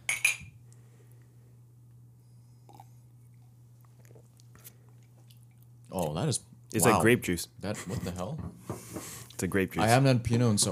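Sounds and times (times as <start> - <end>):
ceramic coffee mugs filled with wine clinking in a toast: 0.0 - 0.5
faint low hum: 0.0 - 10.6
sipping: 2.6 - 6.1
speech: 5.9 - 10.6.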